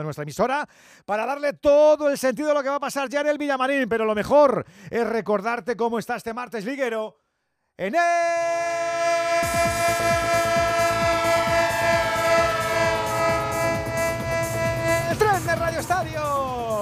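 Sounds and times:
speech: 0.0 - 7.2, 7.8 - 8.4
train horn chord as a train starts off: 9.0 - 16.4.

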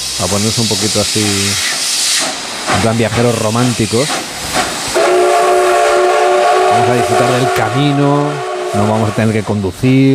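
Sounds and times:
steam train hissing: 0.0 - 10.1
speech: 0.2 - 1.8, 2.8 - 4.2, 6.8 - 10.1
steam train whistle blowing a sustained chord: 4.9 - 9.5.

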